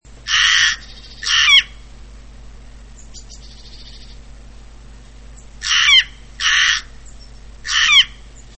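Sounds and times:
rook calling: 0:00.2 - 0:01.9, 0:02.9 - 0:04.3, 0:05.4 - 0:08.5.

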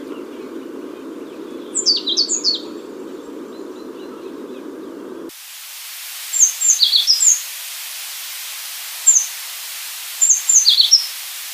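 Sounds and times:
African blue tit Cyanistes teneriffae calls: 0:00.0 - 0:05.3, 0:06.3 - 0:07.4, 0:10.2 - 0:11.2
light hiss: 0:00.0 - 0:11.5.

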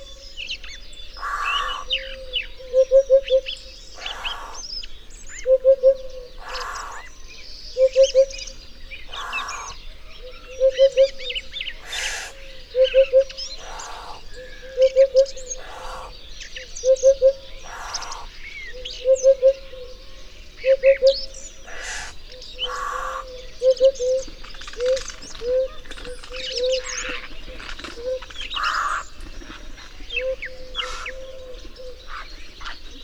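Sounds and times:
hoopoe Upupa epops calling: 0:01.2 - 0:33.0.

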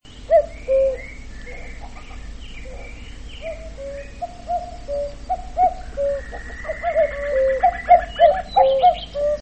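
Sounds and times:
cuckoo singing: 0:00.2 - 0:09.4.

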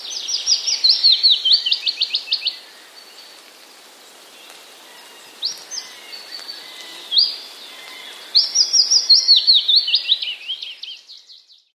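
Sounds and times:
willow warbler singing: 0:00.0 - 0:03.4, 0:04.3 - 0:11.7.

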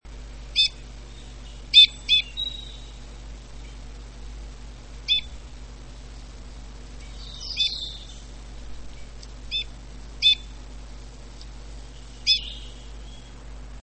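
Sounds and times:
Loxia leucoptera calling: 0:00.5 - 0:03.8, 0:05.0 - 0:05.4, 0:07.0 - 0:08.4, 0:09.0 - 0:10.6, 0:11.4 - 0:13.4.

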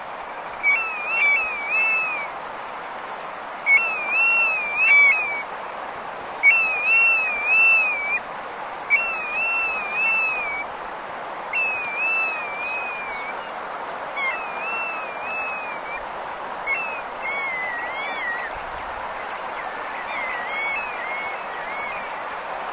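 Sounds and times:
faint steady hiss: 0:00.0 - 0:22.7
bristle-thighed curlew Numenius tahitiensis giving wavering whistled phrases: 0:00.6 - 0:02.3, 0:03.7 - 0:05.5, 0:06.4 - 0:08.2, 0:08.9 - 0:10.7, 0:11.5 - 0:13.5, 0:14.2 - 0:16.0, 0:16.6 - 0:22.2.

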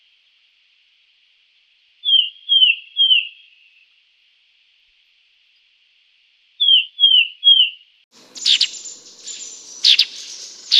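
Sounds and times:
Sultan tit Melanochlora sultanea whistled notes: 0:02.0 - 0:03.6, 0:06.6 - 0:07.8, 0:08.4 - 0:10.7
Sultan tit Melanochlora sultanea buzzy chattering: 0:08.2 - 0:10.7.

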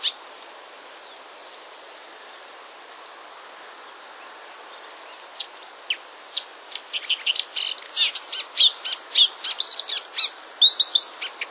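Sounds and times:
Marsh warbler song of high chirps and buzzy whistled notes: 0:04.7 - 0:11.4.

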